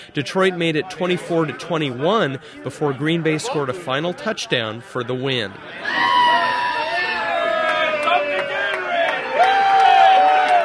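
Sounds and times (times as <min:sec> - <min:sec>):
speech: 0:00.1 - 0:06.2
bar crowd cheering and hollering sarcastically: 0:05.8 - 0:10.6.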